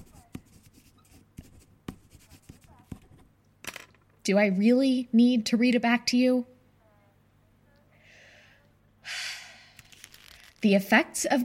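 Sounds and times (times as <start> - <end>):
pen scratching across paper while writing a note: 0.0 - 3.2
speech: 4.2 - 6.5, 10.6 - 11.4
paper rustling: 9.8 - 10.8.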